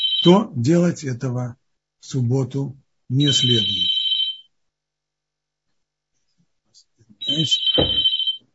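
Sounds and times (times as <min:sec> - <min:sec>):
telephone ringing in electronic bursts: 0:00.0 - 0:00.4, 0:03.3 - 0:04.4, 0:07.2 - 0:08.4
speech: 0:00.2 - 0:03.8, 0:07.3 - 0:08.1.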